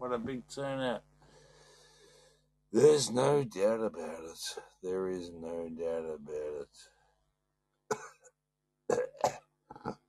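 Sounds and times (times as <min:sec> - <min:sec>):
speech: 0:00.2 - 0:01.1, 0:02.7 - 0:07.0
phlegmy coughs from someone choking on their own phlegm: 0:07.9 - 0:08.3, 0:08.9 - 0:10.0.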